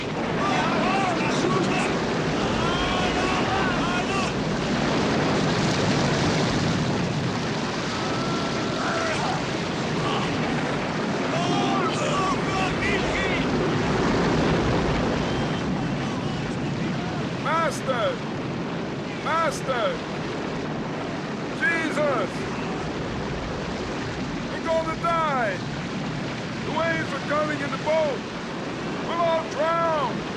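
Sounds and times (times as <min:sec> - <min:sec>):
faint voices shouting: 0:00.0 - 0:04.5, 0:07.8 - 0:13.6, 0:15.1 - 0:18.2, 0:21.5 - 0:23.0
crashing storm waves around a boat: 0:00.0 - 0:30.3
storm wind roaring around a boat: 0:00.0 - 0:30.3.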